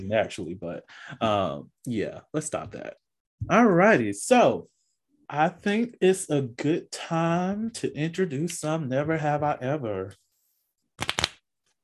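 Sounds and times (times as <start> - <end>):
speech: 0.0 - 10.2
deck of playing cards being riffle shuffled: 11.0 - 11.4.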